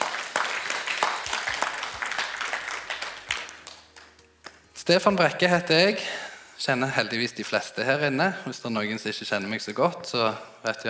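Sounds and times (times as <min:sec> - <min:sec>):
crowd at a worship gathering applauding: 0:00.0 - 0:04.7
speech: 0:04.9 - 0:10.8.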